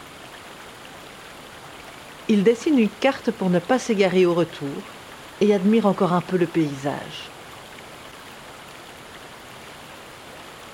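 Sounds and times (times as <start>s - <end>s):
waterfall cascading in a steep drop: 1.5s - 7.5s
speech: 2.3s - 7.4s.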